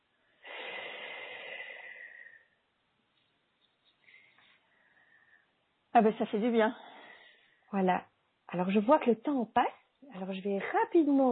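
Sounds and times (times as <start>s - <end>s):
deep breath during a guided relaxation exercise: 0.2s - 2.6s, 4.0s - 5.6s, 6.7s - 7.7s
speech: 6.0s - 6.9s, 7.7s - 11.3s.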